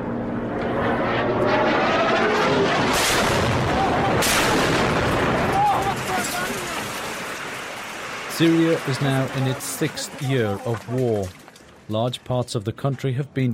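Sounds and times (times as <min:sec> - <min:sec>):
helicopter circling overhead droning: 0:00.0 - 0:04.2, 0:08.3 - 0:13.4
falling barrel bomb blasts: 0:00.0 - 0:09.9
speech: 0:08.4 - 0:13.5.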